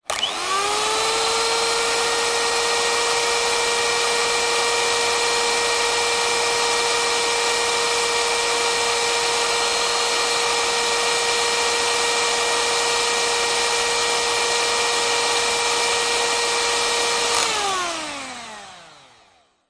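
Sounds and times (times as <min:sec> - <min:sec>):
household electric whisk running: 0:00.0 - 0:19.6.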